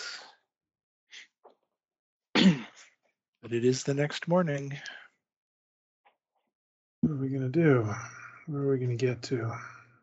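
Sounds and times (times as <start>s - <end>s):
speech: 2.4s - 2.7s, 3.4s - 5.0s, 7.2s - 9.7s
person sneezing: 2.4s - 2.8s.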